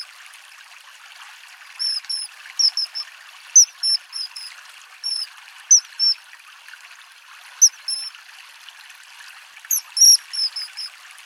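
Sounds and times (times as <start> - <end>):
running water babbling: 0.0 - 11.2
common kingfisher shrill whistled calls: 1.8 - 3.0, 3.6 - 6.2, 7.6 - 8.1, 9.7 - 10.9.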